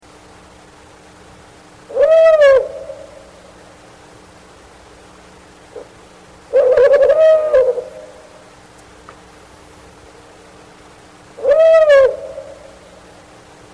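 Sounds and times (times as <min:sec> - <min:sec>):
Bubo owl hooting: 0:01.8 - 0:04.0, 0:05.6 - 0:08.6, 0:11.3 - 0:13.6.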